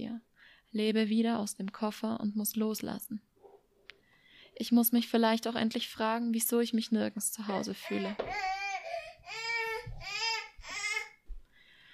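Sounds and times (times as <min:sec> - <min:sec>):
speech: 0:00.7 - 0:03.3, 0:04.6 - 0:08.6
bored baby boy fussing with whiny cries: 0:07.8 - 0:11.2.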